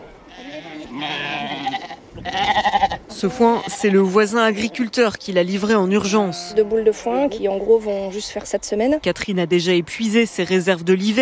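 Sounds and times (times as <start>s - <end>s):
ewes with suckling lambs bleating: 0.3s - 5.0s, 6.0s - 6.8s
speech: 3.2s - 11.2s.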